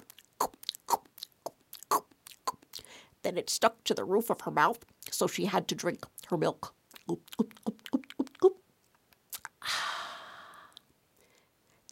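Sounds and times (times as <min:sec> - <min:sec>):
voice imitating biting into a crunchy peanut butter and raspberry jelly sandwich on toasted bread: 0:00.0 - 0:02.9, 0:06.9 - 0:08.6, 0:09.3 - 0:09.6
speech: 0:03.3 - 0:07.6.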